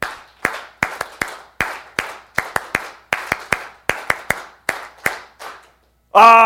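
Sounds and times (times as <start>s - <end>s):
group performing a rhythmic unity clap: 0.0s - 5.8s.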